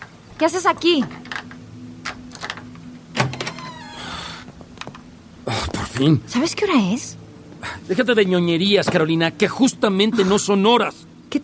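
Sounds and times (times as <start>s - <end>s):
low hum: 0.0s - 11.4s
speech: 0.4s - 1.2s, 6.0s - 11.4s
door creaking as it swings open: 1.2s - 5.0s.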